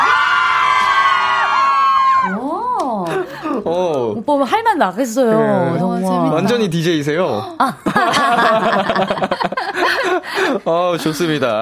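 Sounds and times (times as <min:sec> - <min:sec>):
crowd of fans cheering and screaming at a radio open studio: 0:00.0 - 0:02.5
whoops: 0:00.0 - 0:02.5
speech: 0:03.7 - 0:09.2, 0:10.5 - 0:11.5
laughter: 0:07.6 - 0:11.5.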